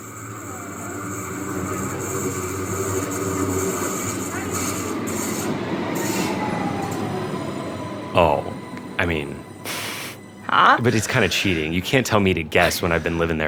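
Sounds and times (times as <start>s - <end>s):
thin high squeal of subway train: 0.0s - 10.4s
subway train wheels rumbling on rail: 0.0s - 13.4s
speech: 10.8s - 13.4s.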